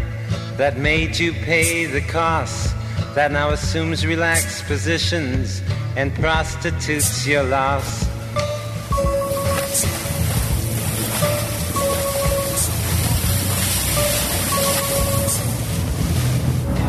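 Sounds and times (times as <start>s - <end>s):
speech: 0.6s - 8.1s
boat engine droning on the sea: 8.2s - 16.8s
sea waves washing and slapping against the boat hull: 8.4s - 16.8s.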